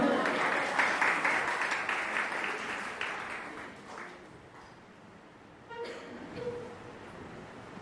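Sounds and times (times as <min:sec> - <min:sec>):
audience applause at a live fado concert: 0:00.0 - 0:04.7.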